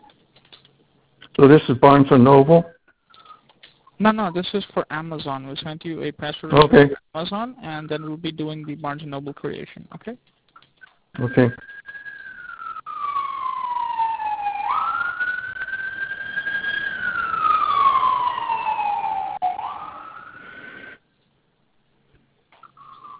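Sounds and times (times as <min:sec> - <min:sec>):
speech: 0:01.4 - 0:02.8, 0:04.0 - 0:10.4, 0:11.1 - 0:11.7
emergency vehicle siren wailing outside on a major crosstown road: 0:11.2 - 0:21.0, 0:22.6 - 0:23.1.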